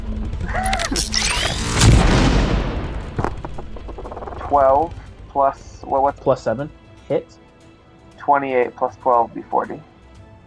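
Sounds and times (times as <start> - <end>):
crackling sparks from video game rifle: 0.0 - 5.2
video game rifle charging up with whirring rising electronic tones: 0.4 - 4.6
speech: 0.9 - 1.3, 4.5 - 7.4, 8.2 - 9.9
video game rifle firing one heavy booming shot: 1.3 - 5.2.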